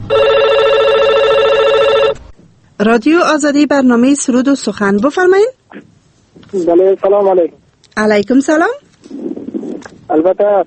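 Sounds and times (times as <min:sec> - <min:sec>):
telephone ringing with an electronic trill: 0:00.0 - 0:02.3
speech: 0:02.8 - 0:09.3, 0:10.1 - 0:10.6.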